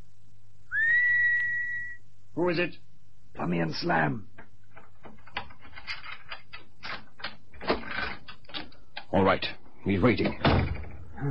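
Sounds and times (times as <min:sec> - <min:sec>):
faint low hum: 0:00.0 - 0:11.2
person whistling a signal: 0:00.7 - 0:02.0
speech: 0:02.4 - 0:04.3, 0:09.1 - 0:11.2.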